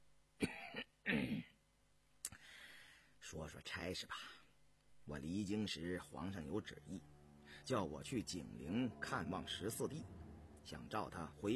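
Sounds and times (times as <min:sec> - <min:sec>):
man dry coughing: 0:00.4 - 0:01.5
speech: 0:03.3 - 0:04.4, 0:05.1 - 0:11.5.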